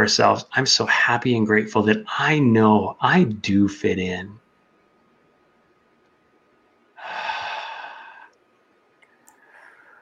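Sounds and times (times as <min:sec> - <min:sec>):
speech: 0:00.0 - 0:04.4
person taking a long deep breath in during a guided gratitude exercise: 0:07.0 - 0:08.4.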